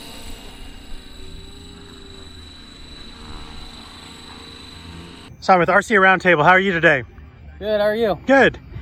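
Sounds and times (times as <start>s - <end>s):
radio-controlled model helicopter engine buzzing whine during nose wheel takeoff: 0.0s - 6.6s
radio-controlled model helicopter low rotor drone: 0.0s - 8.2s
speech: 5.4s - 8.6s.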